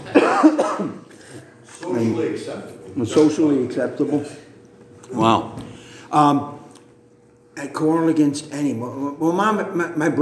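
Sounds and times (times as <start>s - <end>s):
man coughing on purpose: 0.0s - 1.1s
speech: 2.1s - 4.4s, 5.1s - 6.6s, 7.6s - 10.2s.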